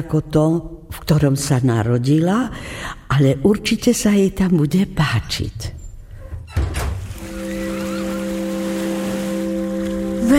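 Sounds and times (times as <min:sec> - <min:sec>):
speech: 0:00.0 - 0:05.8
sea waves over open water: 0:06.9 - 0:10.3
sustained low horn-like tone: 0:07.2 - 0:10.3.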